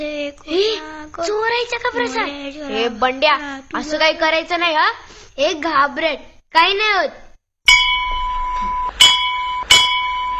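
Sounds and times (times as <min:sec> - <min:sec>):
speech: 0:00.0 - 0:07.2
bell rung very hard during a puja: 0:07.7 - 0:10.3.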